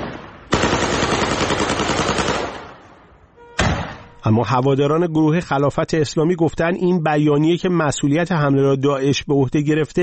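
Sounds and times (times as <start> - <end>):
rapid gunfire fired into the air: 0.0 - 2.8
speech: 4.2 - 10.0.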